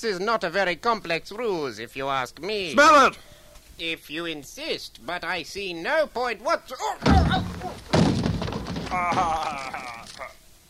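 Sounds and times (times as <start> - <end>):
speech: 0.0 - 8.0, 8.9 - 10.4
heavy cracking blows: 7.0 - 10.3.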